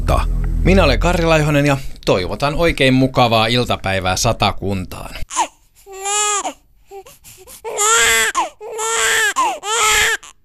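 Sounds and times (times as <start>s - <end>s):
speech: 0.1s - 5.5s
newborn baby crying: 5.3s - 10.4s.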